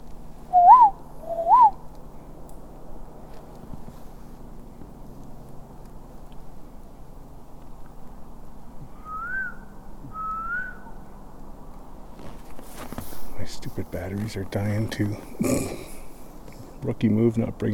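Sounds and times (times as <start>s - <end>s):
steady low hum: 0.0s - 17.7s
short rising-falling whistles: 0.5s - 1.8s, 8.9s - 10.9s
speech: 13.6s - 15.9s, 16.8s - 17.7s.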